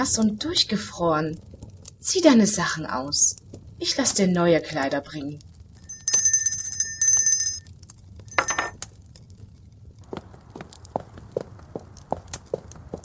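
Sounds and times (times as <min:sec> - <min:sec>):
speech: 0:00.0 - 0:05.5
glassy clink: 0:05.9 - 0:07.7, 0:08.3 - 0:08.7
small hand bell rung to summon a servant: 0:05.9 - 0:07.7, 0:08.3 - 0:08.7.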